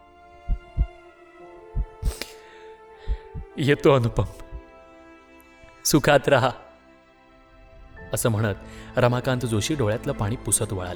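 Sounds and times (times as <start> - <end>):
human heartbeat in steady paired beats: 0.4 - 1.0, 1.8 - 2.2, 3.1 - 3.6, 4.3 - 4.7
burst of hiss: 2.0 - 2.5
speech: 3.6 - 4.4, 5.9 - 6.6, 8.1 - 10.9.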